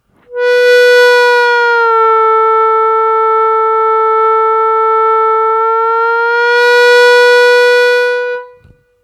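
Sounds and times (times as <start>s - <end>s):
harmonica bending notes two semitones down on third hole smoothly: 0.2s - 9.0s.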